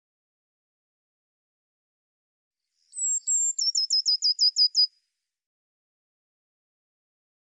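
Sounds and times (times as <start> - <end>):
Eurasian blue tit song: 2.8 - 5.0.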